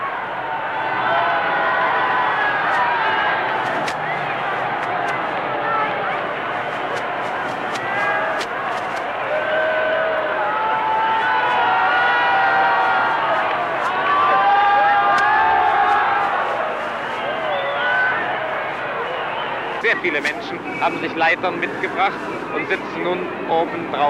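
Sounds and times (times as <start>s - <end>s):
large crowd cheering and shouting in Berlin: 0.0s - 23.2s
people clapping: 1.1s - 19.1s
speech: 20.0s - 24.0s.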